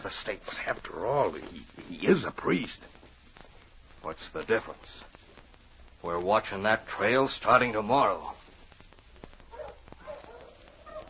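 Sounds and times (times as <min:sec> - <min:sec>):
speech: 0:00.0 - 0:03.0, 0:04.0 - 0:05.2, 0:06.0 - 0:08.4
sled dog team barking while pulling a sled on a trail: 0:09.5 - 0:11.0.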